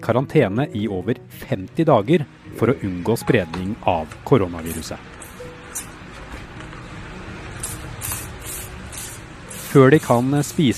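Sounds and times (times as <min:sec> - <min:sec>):
speech: 0:00.0 - 0:05.2, 0:09.7 - 0:10.7
spray bottle spritzing to disinfect a bag: 0:07.6 - 0:10.1.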